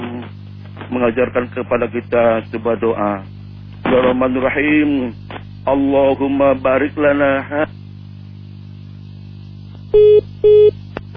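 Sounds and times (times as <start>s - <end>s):
speech: 0.9s - 7.8s
telephone line tones after a dropped phone call: 10.0s - 10.7s.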